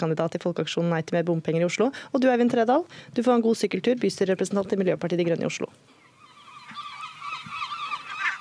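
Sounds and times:
speech: 0.0 - 5.8
gull nesting on a car roof squawking: 6.0 - 8.3.

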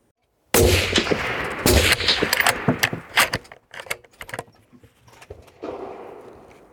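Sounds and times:
rifle shot fired at a target in a big-game hunting shooting test: 0.6 - 3.4, 5.6 - 6.7
metallic clinks and rattles: 1.8 - 5.3.

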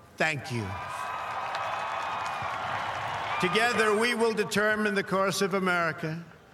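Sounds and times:
speech: 0.2 - 0.9, 3.4 - 6.3
large crowd cheering and shouting at an inauguration: 0.5 - 4.4
large crowd clapping at an inauguration: 0.8 - 4.2.

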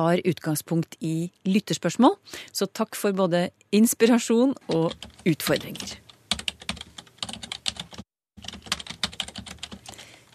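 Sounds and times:
speech: 0.0 - 6.0
typing on a computer keyboard: 4.7 - 10.3.

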